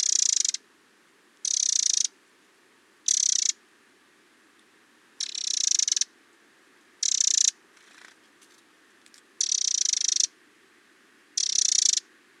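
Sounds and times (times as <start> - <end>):
Eurasian wren Troglodytes troglodytes giving harsh buzzy churring: 0.0 - 0.6, 1.4 - 2.1, 3.0 - 3.6, 5.2 - 6.1, 7.0 - 8.2, 9.4 - 10.4, 11.4 - 12.1.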